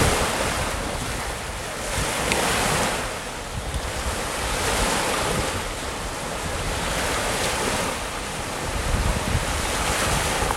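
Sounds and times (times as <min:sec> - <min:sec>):
ocean: 0:00.0 - 0:10.5.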